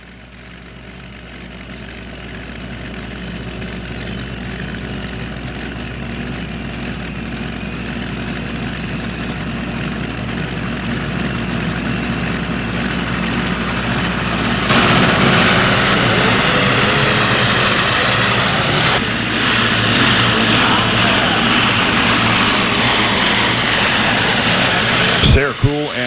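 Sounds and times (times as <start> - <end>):
International pulling tractor engine roaring during pull: 0.0 - 26.0
sharp crack: 13.8 - 25.5.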